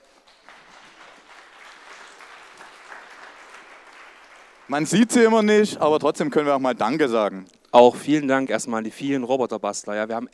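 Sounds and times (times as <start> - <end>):
audience applauding: 0.0 - 5.6
speech: 4.7 - 10.3.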